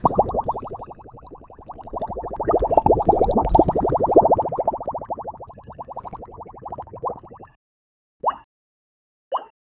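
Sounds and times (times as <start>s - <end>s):
cute bubble exploding: 0.0s - 7.5s.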